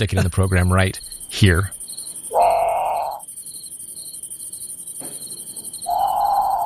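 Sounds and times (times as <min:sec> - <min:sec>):
speech: 0:00.0 - 0:01.8
high-pitched chorus of night insects: 0:00.0 - 0:06.6
great potoo moaning calls: 0:00.4 - 0:03.3, 0:05.2 - 0:06.6.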